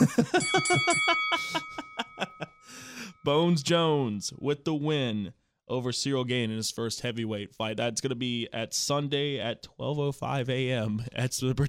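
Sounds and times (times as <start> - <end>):
chuckling laughter: 0.0 - 2.6
bell ringing with a bright lingering tone: 0.1 - 4.0
speech: 3.2 - 11.6.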